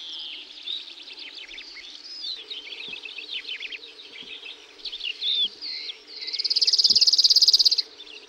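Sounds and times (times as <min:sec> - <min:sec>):
varied chirping and warbling notes: 0:00.0 - 0:08.2
cirl bunting singing a fast flat rattle: 0:06.3 - 0:07.9.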